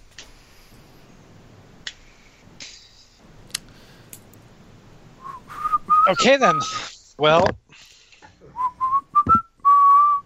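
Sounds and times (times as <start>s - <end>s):
person whistling idly while waiting: 5.2s - 6.8s, 8.6s - 10.2s
speech: 6.1s - 7.6s.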